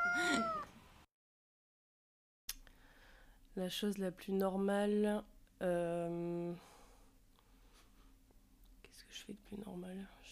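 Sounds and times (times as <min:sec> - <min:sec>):
domestic cat meowing: 0:00.0 - 0:00.7
speech: 0:03.6 - 0:06.7, 0:09.1 - 0:10.2.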